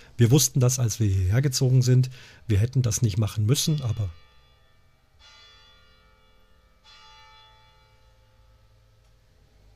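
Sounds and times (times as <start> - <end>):
speech: 0.2 - 4.2
church bell striking quarter-hour strokes across from a home: 3.5 - 9.0.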